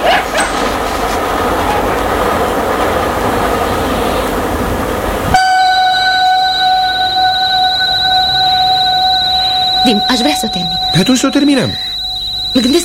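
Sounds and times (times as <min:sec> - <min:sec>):
train roaring by overhead: 0:00.0 - 0:12.8
steady high-pitched ringing tones: 0:05.4 - 0:12.8
speech: 0:09.9 - 0:11.9, 0:12.5 - 0:12.8.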